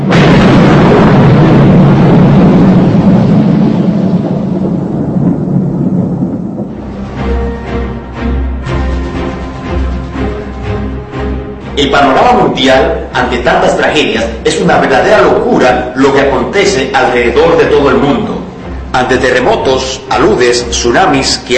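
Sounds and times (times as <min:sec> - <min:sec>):
heavy thunder rumbling from a storm with lightning and hail: 0:00.0 - 0:21.5
speech: 0:11.8 - 0:21.5.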